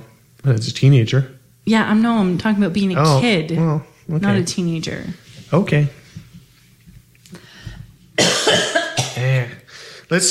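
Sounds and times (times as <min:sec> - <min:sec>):
speech: 0:00.4 - 0:06.0
harsh gross cough: 0:08.2 - 0:09.6.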